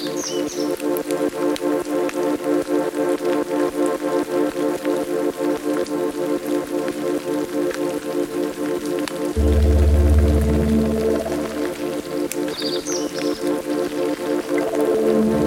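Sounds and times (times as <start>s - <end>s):
rain pattering: 0.0s - 15.4s
deep droning bass: 9.4s - 12.5s
layered hardware synth tones: 9.4s - 12.8s.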